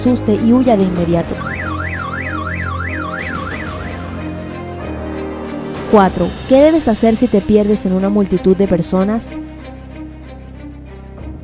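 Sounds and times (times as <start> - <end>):
speech: 0.0 - 1.6, 5.9 - 9.5
car alarm blaring: 0.8 - 4.4.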